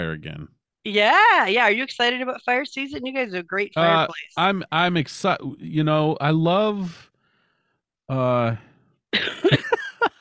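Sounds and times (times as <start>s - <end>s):
speech: 0.0s - 7.1s, 8.1s - 9.8s
person coughing: 3.8s - 4.1s
laughter: 3.8s - 6.9s, 8.1s - 8.6s, 9.2s - 10.1s
sharp vocal bursts: 3.8s - 7.0s.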